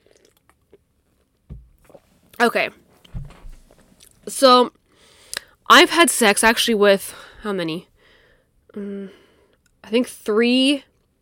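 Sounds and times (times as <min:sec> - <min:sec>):
person sipping wine: 0:01.8 - 0:02.1
speech: 0:02.4 - 0:02.8, 0:04.4 - 0:04.8, 0:05.7 - 0:07.9, 0:08.7 - 0:09.2, 0:09.9 - 0:10.9.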